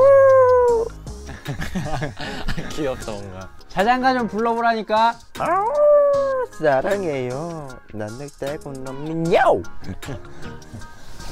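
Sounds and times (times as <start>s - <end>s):
person imitating a puppy's howl: 0.0s - 0.9s, 5.4s - 6.6s
laughter: 1.3s - 3.2s, 9.8s - 10.9s
speech: 1.8s - 11.3s.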